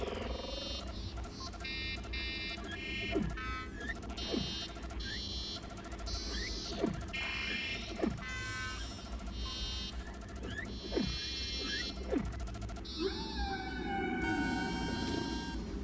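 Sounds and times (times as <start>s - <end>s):
sharp high-pitched electronic tones and pulses: 0.0s - 15.7s
humpback whale song with eerie tonal moans and sliding whistles: 12.9s - 15.7s.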